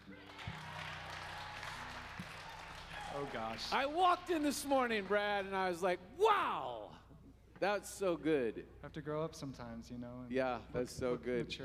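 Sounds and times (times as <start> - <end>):
audience applause: 0.0 - 5.6
speech: 3.2 - 7.0, 7.6 - 11.6.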